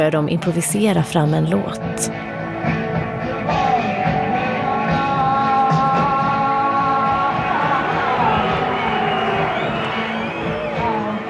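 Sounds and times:
speech: 0:00.0 - 0:02.8
large crowd booing: 0:03.2 - 0:11.2
scattered shouts in a crowd: 0:04.9 - 0:11.2.

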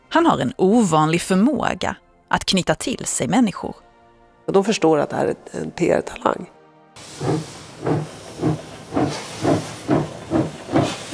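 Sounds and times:
speech: 0:00.1 - 0:03.8, 0:04.5 - 0:08.5
steam locomotive chuffing as it pulls away from the platform in Zürich: 0:07.0 - 0:11.1.

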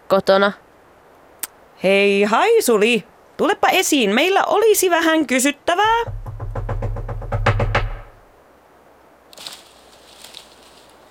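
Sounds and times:
speech: 0:00.1 - 0:00.6, 0:01.8 - 0:06.2
loud knocks at a small burrow in a forest with heavy low thud: 0:05.9 - 0:08.3.

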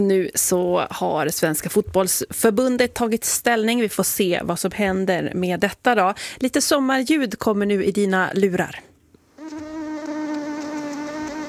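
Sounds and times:
speech: 0:00.0 - 0:08.9
mosquito whining: 0:09.4 - 0:11.4.

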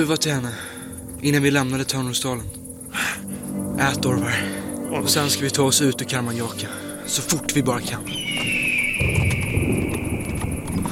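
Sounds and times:
speech: 0:00.0 - 0:09.8
trotting horses' hooves clip-clopping: 0:08.1 - 0:10.8.

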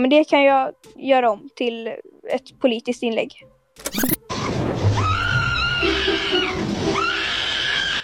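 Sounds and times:
speech: 0:00.0 - 0:04.2
AI-generated monkey screaming: 0:05.0 - 0:08.0.

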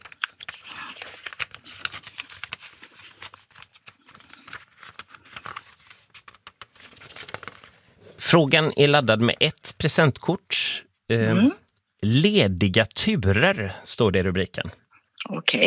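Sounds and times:
pages turning in a binder: 0:00.0 - 0:09.5
speech: 0:08.3 - 0:14.8, 0:15.4 - 0:15.6.

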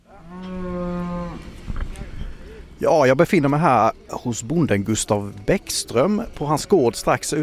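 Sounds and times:
cow mooing after leaving the barn at spring turnout near Åmål: 0:00.1 - 0:01.6
speech: 0:02.8 - 0:07.4.

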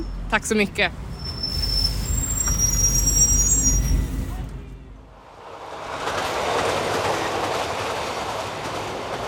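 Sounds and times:
large bus rumbling as it arrives at a bus stop in Åby: 0:00.0 - 0:09.2
speech: 0:00.3 - 0:01.1
bus brakes squealing: 0:01.0 - 0:04.6.

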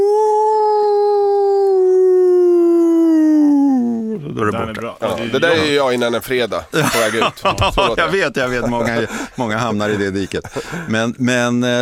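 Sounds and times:
person imitating a wolf howl: 0:00.0 - 0:04.3
laughter: 0:04.2 - 0:11.2
speech: 0:04.5 - 0:11.7.

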